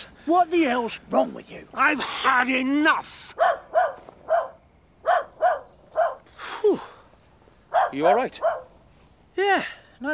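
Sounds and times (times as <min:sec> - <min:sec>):
speech: 0:00.0 - 0:03.6, 0:07.9 - 0:08.6, 0:09.4 - 0:10.1
dog barking with sharp mid-pitched yaps: 0:03.4 - 0:06.3, 0:07.7 - 0:08.8.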